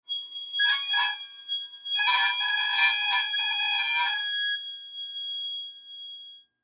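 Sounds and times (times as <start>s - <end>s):
metal squeak: 0.1s - 4.4s.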